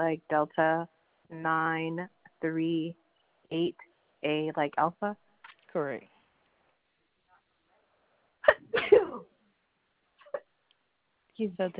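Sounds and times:
speech: 0.0s - 6.1s, 11.4s - 11.7s
loud sneeze: 8.4s - 9.3s.

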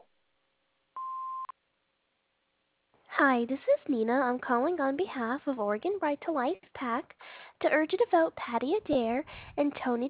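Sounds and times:
answering machine beep: 1.0s - 1.5s
speech: 3.2s - 10.0s.

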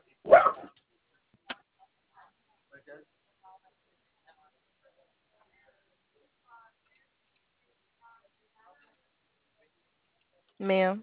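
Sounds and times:
dog barking: 0.3s - 0.8s
speech: 10.6s - 11.0s.

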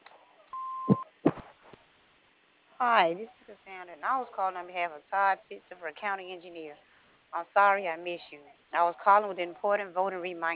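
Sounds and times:
answering machine beep over a phone line: 0.6s - 1.1s
bumps: 0.8s - 1.9s
speech: 2.8s - 10.5s.

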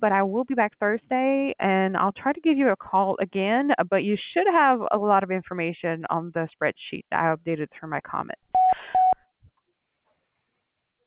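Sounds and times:
speech: 0.0s - 9.1s
voicemail beep: 8.6s - 9.2s.

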